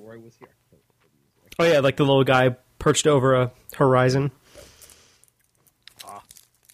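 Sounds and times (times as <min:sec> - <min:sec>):
speech: 0:00.1 - 0:00.9, 0:01.5 - 0:04.7
crinkly mouth noises: 0:05.2 - 0:06.7
chewing on a chocolate almond: 0:05.4 - 0:06.7.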